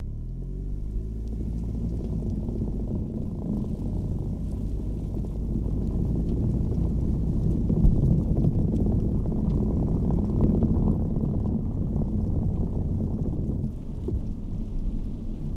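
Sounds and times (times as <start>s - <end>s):
car tires on cobblestones: 0.0s - 15.5s.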